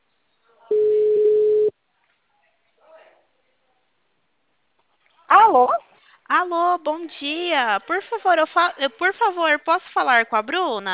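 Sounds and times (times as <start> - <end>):
telephone ringback tone on an outgoing call: 0.7 - 1.7
speech: 6.8 - 10.9.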